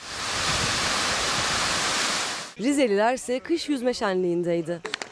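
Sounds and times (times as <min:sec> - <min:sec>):
partially frozen waterfall roaring: 0:00.0 - 0:02.6
speech: 0:02.6 - 0:04.9.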